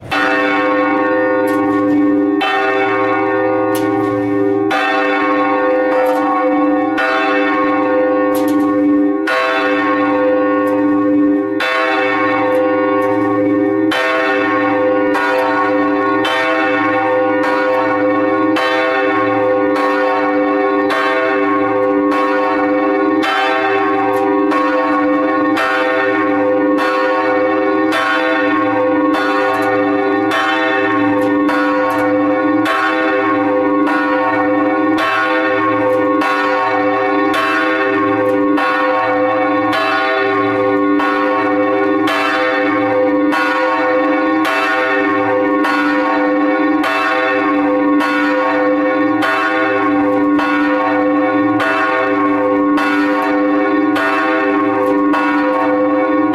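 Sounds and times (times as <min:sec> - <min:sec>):
church bell ringing: 0:00.0 - 0:56.3.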